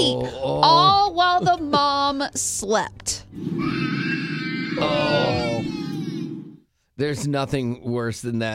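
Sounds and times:
speech: 0.0s - 3.8s, 4.8s - 5.7s, 7.0s - 8.5s
young child screaming on a flight: 3.4s - 6.5s.

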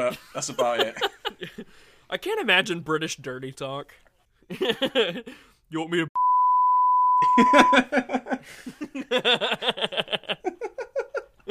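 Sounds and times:
speech: 0.0s - 6.1s, 7.4s - 10.9s
rhythmic giggly laughter: 4.5s - 5.3s, 7.3s - 11.5s
loud steady censor beep tone: 6.2s - 7.8s.

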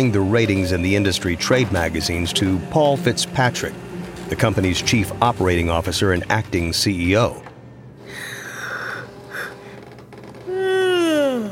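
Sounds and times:
speech: 0.0s - 7.5s
loud drawn-out yawn ending in a voiced groan: 8.1s - 9.8s, 10.5s - 11.4s.

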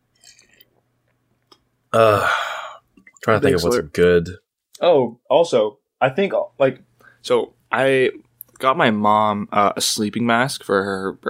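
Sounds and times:
sipping water: 0.1s - 3.8s
speech: 2.0s - 2.4s, 3.2s - 11.2s.

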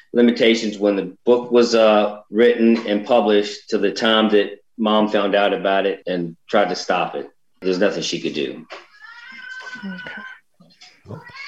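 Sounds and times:
speech: 0.1s - 8.9s, 9.7s - 10.3s
cat meowing: 8.9s - 10.4s, 11.0s - 11.4s.

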